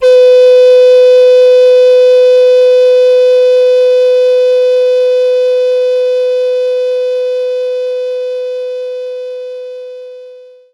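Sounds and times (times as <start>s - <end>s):
recorder playing B4 note: 0.0s - 7.1s.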